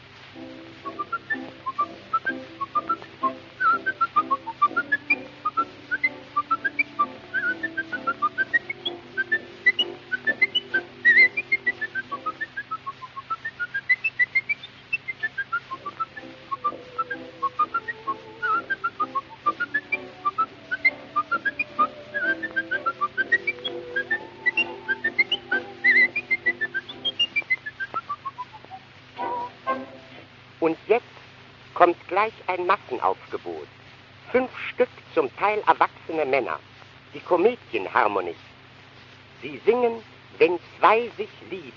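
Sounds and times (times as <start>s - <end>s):
person whistling a lively bouncy melody: 0.8s - 29.8s
speech: 32.2s - 38.5s, 39.4s - 41.7s.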